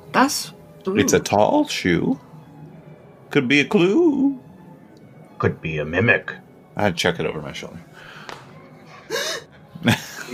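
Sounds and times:
speech: 0.1 - 2.3, 3.3 - 4.4, 5.4 - 8.1, 9.8 - 10.1
voiced gasp: 9.0 - 9.5.

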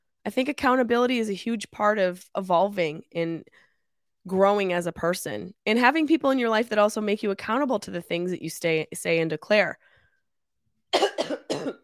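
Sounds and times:
speech: 0.2 - 3.6, 4.2 - 9.9
person coughing harshly: 10.9 - 11.8.

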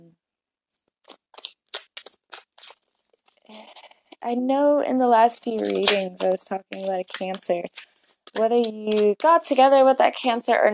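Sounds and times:
tarot cards being shuffled: 1.0 - 4.2, 5.2 - 10.4
speech: 4.2 - 10.7.

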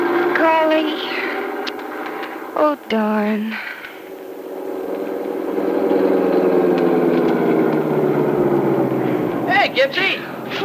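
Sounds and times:
bus engine revving and pulling away: 0.0 - 10.6
speech: 2.6 - 3.8, 9.7 - 10.6.

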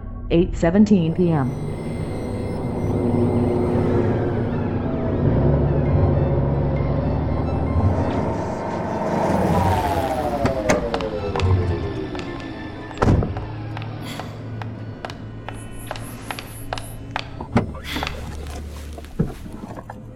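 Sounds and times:
speech: 0.3 - 1.8
road traffic roar at an expressway rest stop: 1.4 - 20.1
vehicles rumbling past at an expressway rest stop: 1.6 - 20.1
vehicle speeding by with a descending whine: 1.9 - 17.3.

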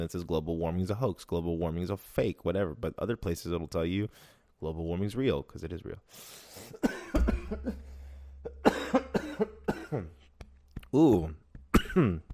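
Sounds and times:
speech: 0.0 - 7.9, 10.9 - 11.4, 12.0 - 12.3
person coughing: 6.7 - 10.2, 11.7 - 12.3.

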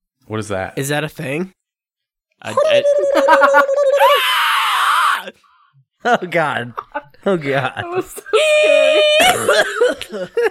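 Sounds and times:
speech: 0.3 - 1.6, 2.4 - 4.4, 5.2 - 10.4
playful vocal whoops and squeals: 2.4 - 5.4, 8.3 - 9.5
laughter: 2.5 - 4.0, 6.8 - 10.4.

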